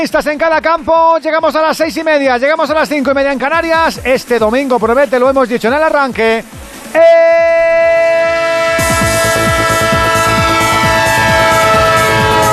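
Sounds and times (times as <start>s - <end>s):
speech: 0.0s - 7.9s
multi-tone train horn blast sound effect: 7.0s - 12.5s.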